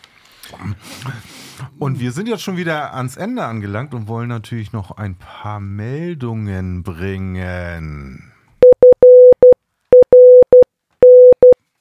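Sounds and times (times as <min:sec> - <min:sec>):
speech: 0:00.6 - 0:08.3
electronic Morse code beeps: 0:08.6 - 0:11.6.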